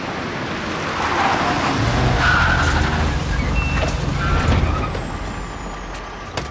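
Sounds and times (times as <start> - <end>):
cars driving past on a road: 0.0 - 6.4
heavy truck or bus passing: 0.0 - 6.4
high squeals: 2.0 - 6.3.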